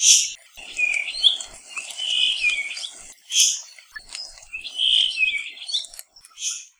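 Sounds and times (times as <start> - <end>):
Puaohi small thrush of Kauai singing: 0.0 - 6.7.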